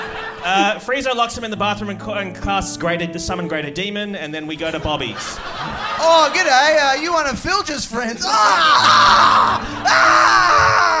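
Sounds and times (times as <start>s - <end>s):
laughter: 0.0s - 0.9s, 4.6s - 7.5s, 8.1s - 10.9s
speech: 0.4s - 10.9s
man screaming in anguish: 8.2s - 10.9s.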